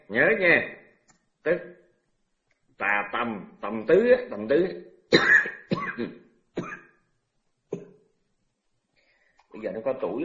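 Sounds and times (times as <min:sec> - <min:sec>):
speech: 0:00.1 - 0:00.8, 0:01.4 - 0:01.8, 0:02.8 - 0:06.7, 0:09.6 - 0:10.2
person coughing during a Buddhist dharma talk: 0:05.2 - 0:07.0, 0:07.7 - 0:08.0.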